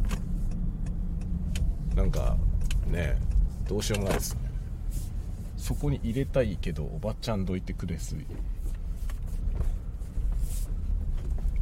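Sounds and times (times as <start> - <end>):
car engine and road noise while driving: 0.0 - 11.6
faint higher ticks: 0.1 - 4.0
speech: 2.0 - 4.4, 5.6 - 8.5.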